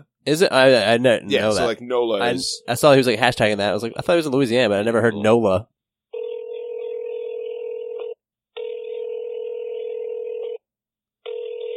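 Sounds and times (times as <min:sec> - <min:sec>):
speech: 0:00.0 - 0:05.8
ringing tone of an outgoing phone call: 0:06.1 - 0:10.6, 0:11.2 - 0:11.7.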